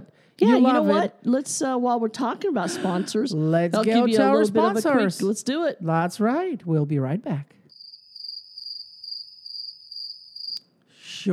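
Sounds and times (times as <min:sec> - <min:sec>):
speech: 0:00.4 - 0:07.6
crickets chirping in a high-pitched trill: 0:07.7 - 0:10.7.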